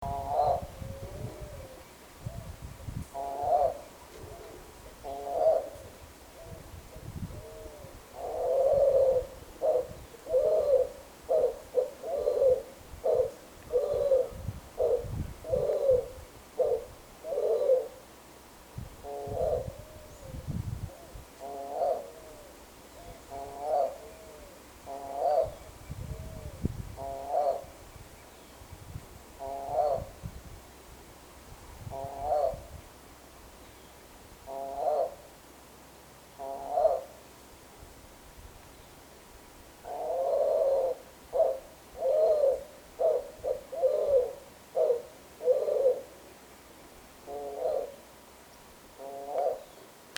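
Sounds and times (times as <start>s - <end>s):
dove cooing: 0.0s - 18.0s, 19.0s - 27.8s, 29.4s - 30.2s, 31.8s - 32.8s, 34.4s - 35.3s, 36.4s - 37.2s, 39.8s - 46.3s, 47.2s - 48.1s, 49.0s - 49.8s.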